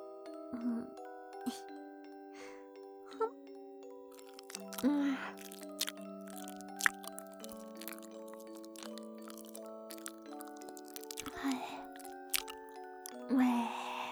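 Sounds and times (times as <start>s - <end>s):
faint sustained tones: 0.0s - 14.0s
woman chewing soft sweet potato: 4.1s - 13.4s.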